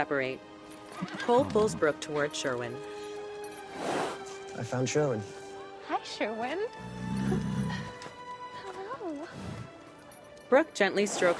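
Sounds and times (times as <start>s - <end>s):
speech: 0.0s - 3.0s, 3.8s - 7.4s, 10.5s - 11.3s
horse whinnying: 1.0s - 2.3s, 6.8s - 8.1s.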